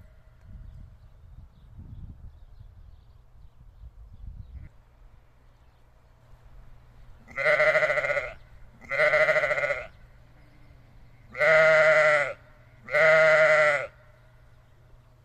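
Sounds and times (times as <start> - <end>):
steady low hum: 0.0 - 15.2
sheep bleating: 7.3 - 10.7, 11.3 - 14.0.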